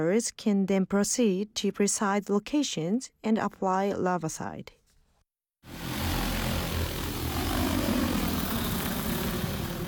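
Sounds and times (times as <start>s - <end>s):
speech: 0.0s - 4.8s
drone propellers buzzing in flight: 5.7s - 9.8s.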